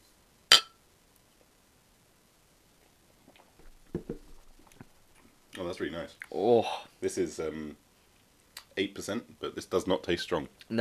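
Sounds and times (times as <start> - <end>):
glass clink: 0.5 - 0.8
speech: 5.6 - 7.8, 8.8 - 10.7.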